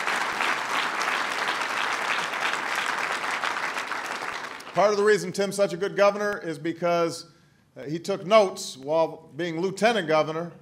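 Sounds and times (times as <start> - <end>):
large audience applauding: 0.0 - 5.0
speech: 4.8 - 10.6.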